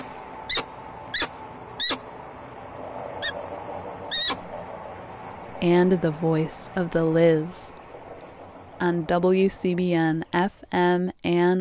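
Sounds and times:
peregrine falcon sharp harsh calls: 0.0 - 2.1, 3.2 - 3.4, 4.1 - 4.4
steady background hum: 0.0 - 11.5
speech: 5.6 - 7.8, 8.8 - 11.5.

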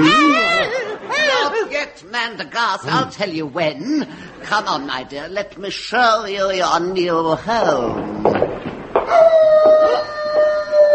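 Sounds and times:
laughter: 0.0 - 1.9, 2.8 - 4.9
speech: 2.0 - 10.2
wolf howling: 9.1 - 10.9.

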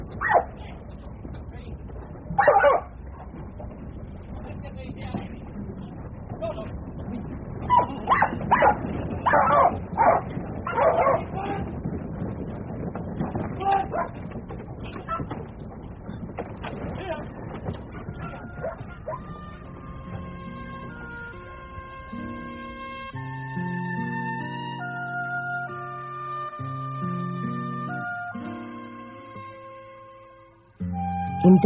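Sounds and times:
low steady rumble: 0.0 - 31.6
working dog barking and yipping outdoors: 0.2 - 0.6, 2.3 - 3.3, 7.7 - 11.3, 13.9 - 14.2, 18.2 - 19.4.

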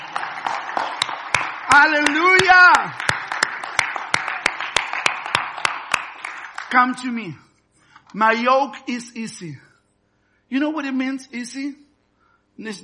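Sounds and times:
audience clapping hands in a steady rhythmic beat: 0.0 - 7.2
speech: 1.7 - 3.1, 6.7 - 7.4, 8.1 - 9.6, 10.5 - 11.8, 12.6 - 12.8
loud voice shouting: 1.8 - 3.0.

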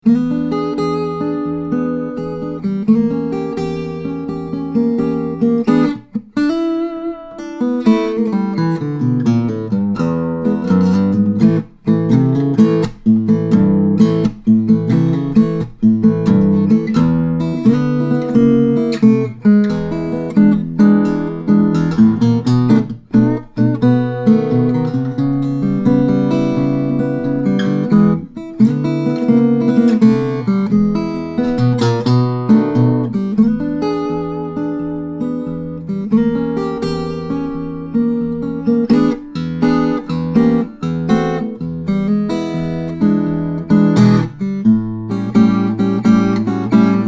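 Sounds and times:
steel string flattop guitar: 0.0 - 47.0.

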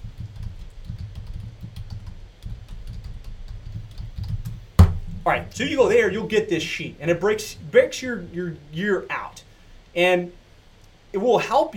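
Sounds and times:
computer keyboard typing as a web address is entered: 0.0 - 4.6
steady low hum: 0.0 - 11.7
speech: 5.2 - 9.2, 10.0 - 10.4, 11.1 - 11.7.

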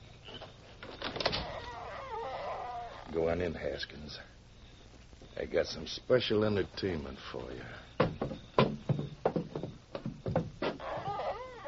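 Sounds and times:
low hiss: 0.0 - 11.6
door creaking open with a wavering squeal: 0.3 - 3.2, 8.3 - 11.6
speech: 3.1 - 4.4, 5.4 - 7.9.

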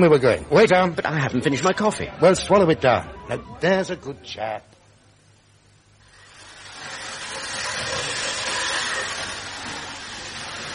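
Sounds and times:
speech: 0.0 - 4.7
model steam trains running: 6.0 - 10.7.

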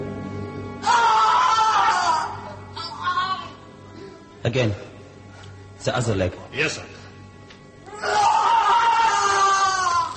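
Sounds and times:
man screaming in pain: 0.8 - 2.4, 7.9 - 10.1
speech: 4.4 - 4.9, 5.8 - 7.0.

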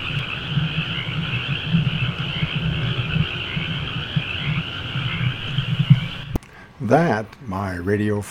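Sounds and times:
high trilling drone: 0.0 - 6.4
chorus of frogs croaking outside an open window: 0.0 - 7.1
speech: 6.9 - 8.2.

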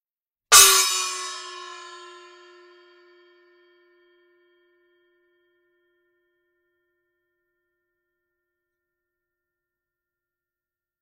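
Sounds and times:
loud 7-inch gong: 0.5 - 4.8.

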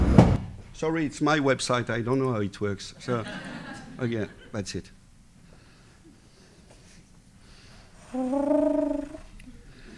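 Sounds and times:
speech: 0.8 - 5.0
laughter: 3.0 - 4.5
person imitating pigeon cooing: 8.1 - 9.3.

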